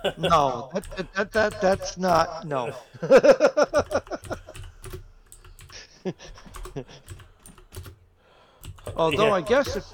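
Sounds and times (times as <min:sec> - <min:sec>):
speech: 0:00.0 - 0:04.0, 0:06.0 - 0:07.0, 0:09.0 - 0:09.9
laughter: 0:00.0 - 0:04.8, 0:05.8 - 0:07.1
typing on a computer keyboard: 0:00.3 - 0:02.4, 0:03.7 - 0:08.0, 0:08.6 - 0:09.9.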